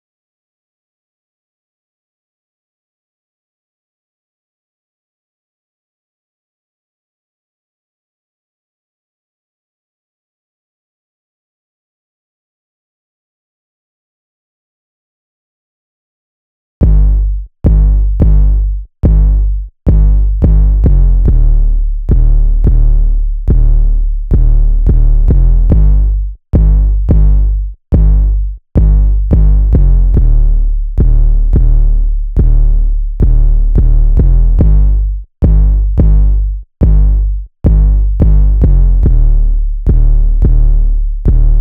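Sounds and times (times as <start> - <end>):
bass: 16.8 - 41.5.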